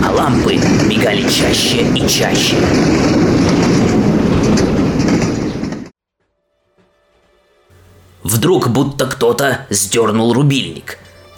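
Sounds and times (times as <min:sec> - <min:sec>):
train wheels clacking over rail joints: 0:00.0 - 0:05.9
speech: 0:00.2 - 0:03.5, 0:08.3 - 0:11.0.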